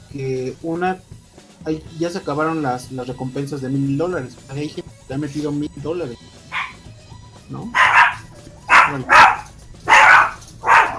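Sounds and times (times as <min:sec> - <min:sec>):
speech: 0:00.1 - 0:06.4, 0:07.5 - 0:07.9, 0:08.9 - 0:09.2
dog barking: 0:06.5 - 0:06.8, 0:07.7 - 0:10.9.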